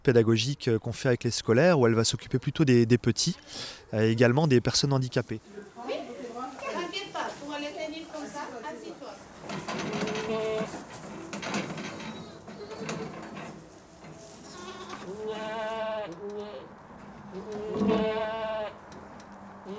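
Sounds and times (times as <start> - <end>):
speech: 0.0 - 6.0
mechanical rattling and clatter: 9.4 - 14.5
herd of goats bleating on a farm: 9.8 - 10.9, 14.4 - 16.7, 17.3 - 18.8.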